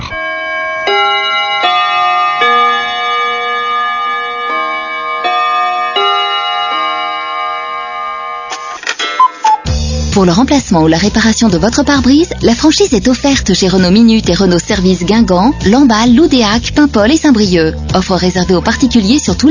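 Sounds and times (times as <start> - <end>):
radio time chime bell-like melody: 0.0 - 9.7
speech: 10.2 - 19.5.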